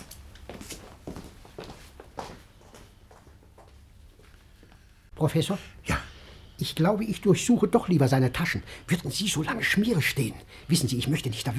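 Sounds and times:
soft footsteps of people walking off together: 0.0s - 5.1s
speech: 5.2s - 5.8s, 6.6s - 11.5s.

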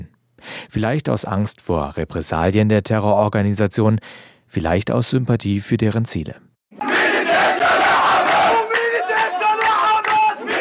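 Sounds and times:
speech: 0.6s - 6.5s
large crowd chanting and cheering loudly: 6.8s - 10.6s.

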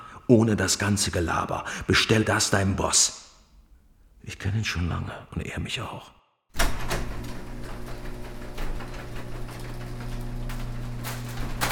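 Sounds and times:
speech: 0.3s - 3.2s, 4.2s - 6.7s
motorized garage roller door opening: 6.6s - 11.7s.

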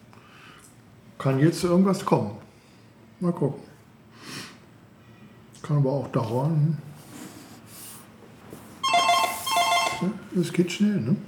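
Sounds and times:
speech: 1.2s - 2.4s, 3.2s - 4.3s, 5.7s - 6.9s, 10.0s - 11.2s
telephone ringing with a bright trilling electronic tone: 8.8s - 10.4s.

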